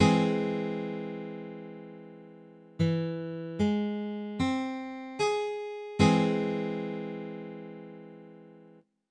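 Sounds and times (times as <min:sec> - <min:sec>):
guitar chords: 0:00.0 - 0:08.8.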